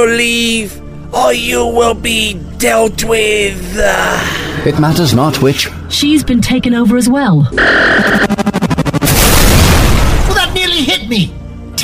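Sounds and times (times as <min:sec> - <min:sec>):
speech: 0:00.0 - 0:08.5, 0:11.1 - 0:11.8
warning shot blast in a science-fiction drama: 0:07.6 - 0:10.6.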